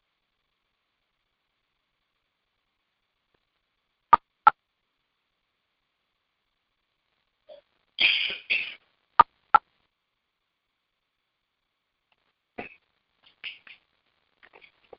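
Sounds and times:
dry coughs from a person getting over a cold: 0:08.0 - 0:08.8
throat-clearing from a person getting over a cold: 0:08.0 - 0:08.8.

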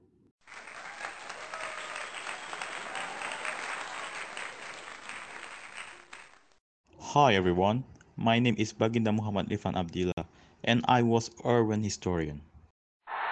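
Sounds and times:
studio audience applause: 0:00.4 - 0:06.6
speech: 0:07.1 - 0:12.5.

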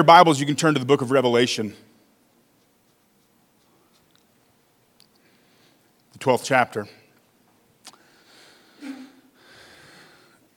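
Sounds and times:
speech: 0:00.0 - 0:01.9, 0:06.2 - 0:07.0
faint sneeze: 0:08.8 - 0:09.3.

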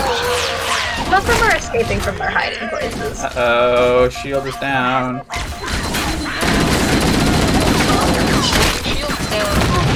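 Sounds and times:
explosions in a video game battle: 0:00.0 - 0:04.3, 0:05.2 - 0:09.9
speech: 0:01.2 - 0:05.8
rapid gunfire in a video game battle: 0:05.4 - 0:09.9.

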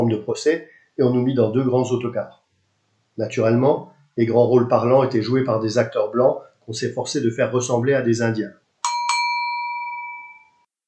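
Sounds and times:
speech: 0:00.0 - 0:02.4, 0:03.2 - 0:08.6
small bell ringing: 0:08.8 - 0:10.7.

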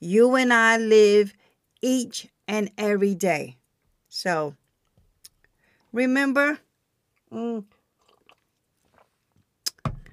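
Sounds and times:
speech: 0:00.0 - 0:04.6, 0:06.0 - 0:06.6, 0:07.3 - 0:07.7
slurping gulp of hot tea: 0:08.0 - 0:09.2
person sipping hot tea: 0:08.0 - 0:10.1
wet mouth sounds: 0:08.0 - 0:10.1.

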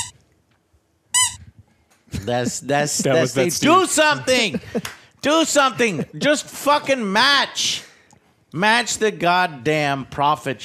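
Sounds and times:
squeaky toy squeak sound effect: 0:01.1 - 0:01.5
laughter: 0:02.1 - 0:06.6
speech: 0:02.2 - 0:07.9, 0:08.5 - 0:10.6.

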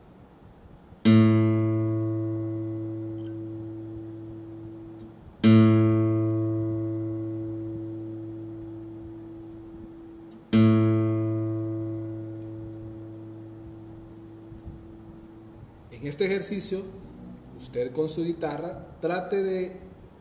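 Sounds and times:
440 Hz reference tone note A: 0:01.1 - 0:15.7
speech: 0:16.2 - 0:19.9.

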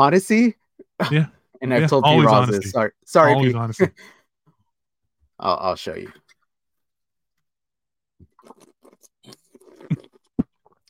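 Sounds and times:
speech: 0:00.0 - 0:04.2, 0:05.4 - 0:06.2
slurping and sipping water: 0:08.2 - 0:10.8.

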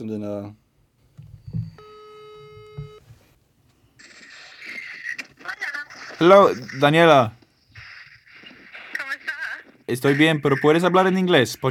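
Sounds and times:
speech: 0:00.0 - 0:00.6, 0:06.2 - 0:07.4, 0:09.9 - 0:11.7
phone ringback tone of an outgoing call: 0:01.5 - 0:03.0.

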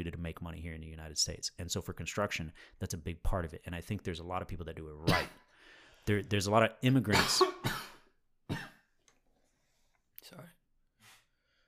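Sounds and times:
speech: 0:00.0 - 0:05.4, 0:06.1 - 0:07.8
person coughing: 0:05.1 - 0:05.4, 0:07.1 - 0:08.9
breathy exhale: 0:05.5 - 0:06.0.

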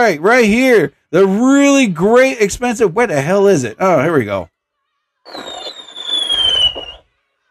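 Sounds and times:
speech: 0:00.0 - 0:04.5, 0:05.3 - 0:05.6
crackling hiss of fireworks: 0:05.3 - 0:07.0
shrill whistling firework rocket: 0:05.3 - 0:07.1.

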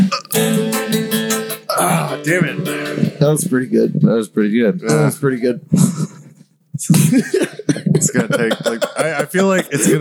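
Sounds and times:
forced burp made by swallowing air: 0:00.0 - 0:00.5
speech: 0:01.8 - 0:06.0, 0:06.8 - 0:10.0
laughter: 0:06.9 - 0:10.0.

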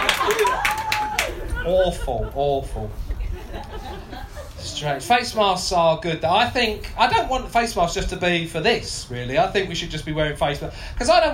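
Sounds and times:
scattered audience clapping: 0:00.0 - 0:01.5
laughter: 0:00.0 - 0:05.0
speech: 0:01.7 - 0:11.3.

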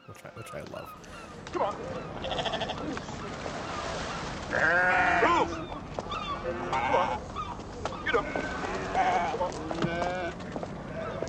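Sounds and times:
busy noisy outdoor background: 0:00.0 - 0:11.2
speech: 0:00.2 - 0:03.9, 0:04.5 - 0:05.7, 0:06.4 - 0:07.3
goats bleating: 0:02.2 - 0:02.9, 0:04.5 - 0:05.6, 0:06.4 - 0:07.2, 0:08.0 - 0:11.2.

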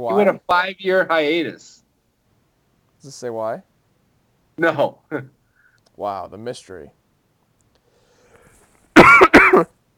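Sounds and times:
speech: 0:00.0 - 0:01.8, 0:03.0 - 0:03.7, 0:04.6 - 0:05.4, 0:06.0 - 0:07.0, 0:09.6 - 0:09.8
person coughing: 0:09.0 - 0:09.7.

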